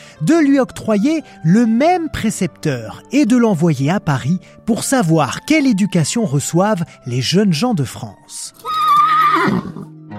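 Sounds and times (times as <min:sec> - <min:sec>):
speech: 0:00.2 - 0:10.1
mare whinnying: 0:08.6 - 0:10.0.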